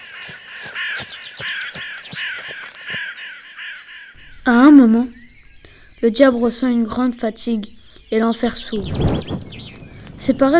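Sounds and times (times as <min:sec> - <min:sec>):
crow cawing: 0:00.0 - 0:04.5
speech: 0:04.6 - 0:05.2, 0:06.0 - 0:09.5, 0:10.3 - 0:10.5.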